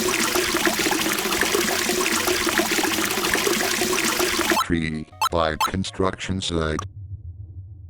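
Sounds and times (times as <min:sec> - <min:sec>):
rushing water: 0:00.0 - 0:04.6
speech: 0:04.7 - 0:07.0.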